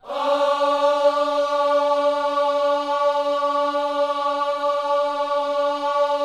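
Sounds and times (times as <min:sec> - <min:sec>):
gospel music: 0:00.0 - 0:06.2.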